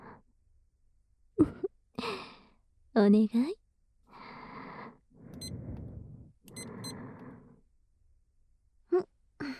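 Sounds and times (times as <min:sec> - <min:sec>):
speech: 0:03.0 - 0:03.6
kitchen timer short high-pitched beeps: 0:06.5 - 0:07.0.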